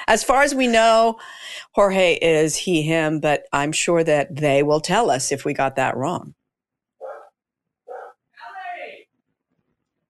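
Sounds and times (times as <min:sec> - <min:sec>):
speech: 0:00.1 - 0:06.4
dog barking: 0:07.0 - 0:08.2
man yelling at a barking dog: 0:08.4 - 0:09.0.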